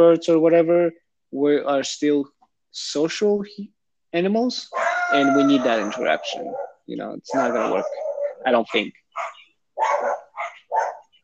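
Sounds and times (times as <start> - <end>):
speech: 0.0 - 9.3
dog barking: 4.7 - 8.5, 9.1 - 11.1.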